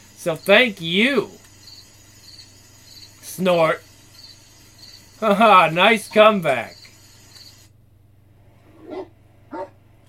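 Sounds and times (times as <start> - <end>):
low steady electrical hum: 0.0 - 10.0
speech: 0.2 - 1.4, 3.4 - 3.9, 5.2 - 6.8
small dog barking: 8.8 - 9.8.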